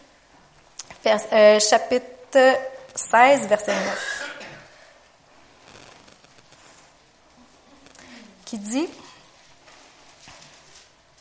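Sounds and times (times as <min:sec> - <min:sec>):
speech: 0:01.0 - 0:04.1, 0:08.5 - 0:09.1
Bible pages turning at a church sermon: 0:05.6 - 0:07.0.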